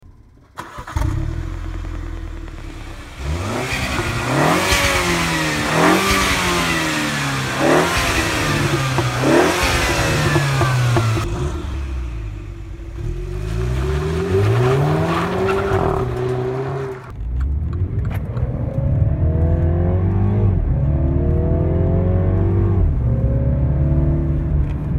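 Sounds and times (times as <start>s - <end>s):
MINI Cooper Clubman S car: 0.0s - 24.9s.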